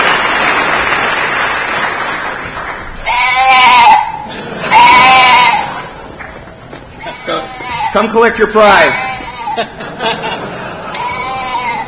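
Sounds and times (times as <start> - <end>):
steady broadband noise: 0.0 - 11.8
sheep bleating: 3.0 - 5.9, 7.0 - 9.7, 10.9 - 11.8
laughter: 4.1 - 6.4, 9.3 - 11.8
speech: 7.9 - 9.0, 9.6 - 10.3.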